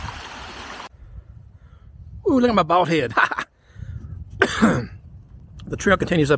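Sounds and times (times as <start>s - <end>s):
clear mountain stream flowing along a hiking trail in Wyoming: 0.0s - 0.9s
speech: 2.3s - 3.3s, 4.4s - 5.0s, 5.7s - 6.3s.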